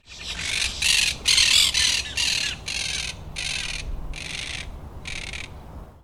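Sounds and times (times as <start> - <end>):
Monk Parakeet calling: 0.0 - 5.5.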